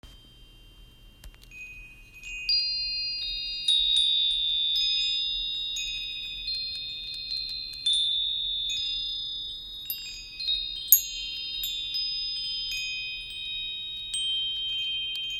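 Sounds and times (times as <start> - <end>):
wind chimes: 0.0 - 15.3.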